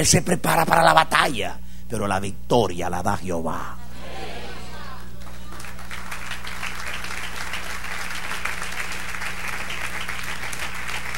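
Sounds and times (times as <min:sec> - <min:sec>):
speech: 0:00.0 - 0:03.8
low hum: 0:00.0 - 0:11.1
audience applause: 0:04.7 - 0:11.1.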